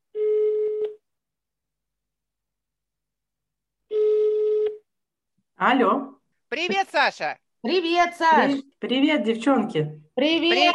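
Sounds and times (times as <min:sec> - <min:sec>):
outgoing phone call ringback tone: 0:03.9 - 0:04.8
speech: 0:05.6 - 0:10.7.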